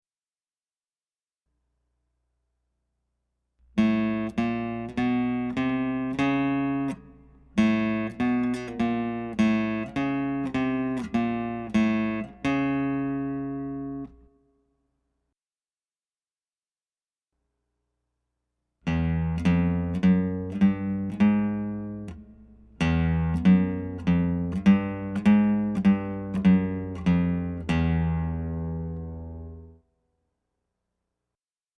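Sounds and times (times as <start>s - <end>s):
sharp notes on the fifth and sixth guitar strings: 3.7s - 14.3s, 18.9s - 29.8s.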